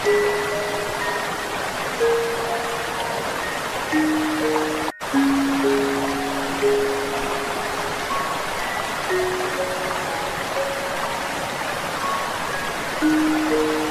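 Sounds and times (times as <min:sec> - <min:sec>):
flowing water rushing steadily: 0:00.0 - 0:13.8
soft light music of long held notes: 0:00.0 - 0:13.8.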